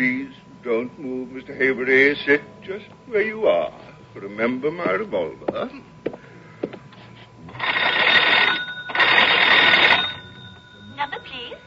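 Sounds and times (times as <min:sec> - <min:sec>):
speech: 0:00.0 - 0:06.2
old telephone bell ringing: 0:07.5 - 0:11.6.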